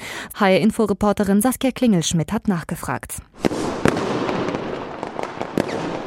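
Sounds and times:
speech: 0.4s - 4.0s
fireworks exploding on New Year's Eve: 3.3s - 6.0s.

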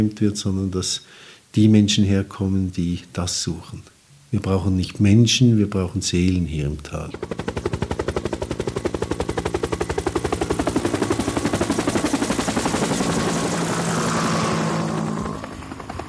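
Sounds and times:
speech: 0.0s - 7.5s
helicopter flying overhead above a valley: 7.0s - 16.0s.

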